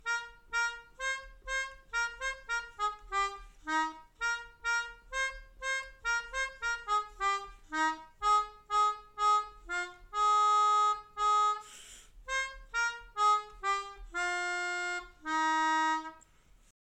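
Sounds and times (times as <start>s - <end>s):
melodica playing a folk tune: 0.0s - 16.4s.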